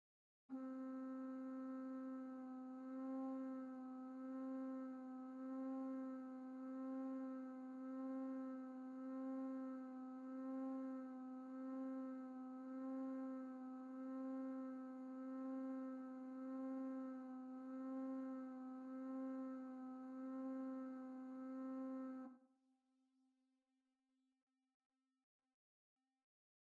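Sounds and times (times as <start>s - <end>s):
flute tremolo: 0.6s - 22.3s.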